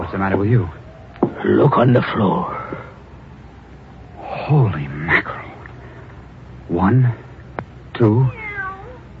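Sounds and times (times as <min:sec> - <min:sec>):
speech: 0:00.1 - 0:00.8, 0:01.4 - 0:02.6, 0:04.5 - 0:04.9, 0:06.7 - 0:07.2, 0:08.0 - 0:08.4
cat meowing: 0:08.1 - 0:09.1.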